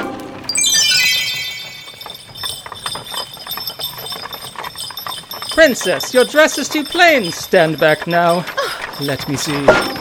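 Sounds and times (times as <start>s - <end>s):
horse hooves clip-clopping: 0.2s - 9.9s
silver bells on horses jingling: 0.5s - 9.9s
speech: 5.6s - 9.9s.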